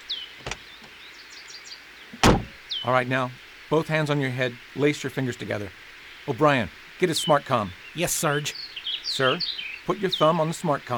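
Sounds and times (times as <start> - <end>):
truck door unlatching with a sharp click: 0.4 - 0.9, 2.2 - 2.6
speech: 2.8 - 8.6, 9.2 - 10.9.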